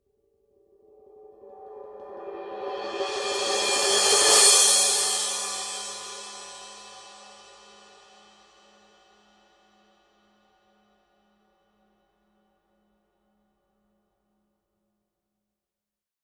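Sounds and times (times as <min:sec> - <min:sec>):
Paiste 2002 20 power crash cymbal roll: 0:02.2 - 0:08.3.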